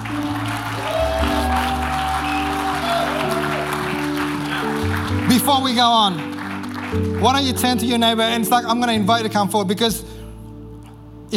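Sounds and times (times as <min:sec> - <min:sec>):
large audience applauding: 0:00.0 - 0:08.4
speech: 0:05.3 - 0:06.3, 0:06.9 - 0:10.1.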